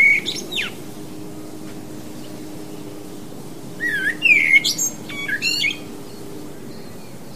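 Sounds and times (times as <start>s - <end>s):
Common blackbird rich whistles breaking into thin scratchy twittering: 0.0s - 0.8s, 3.8s - 5.8s
constant low hum: 0.0s - 7.3s.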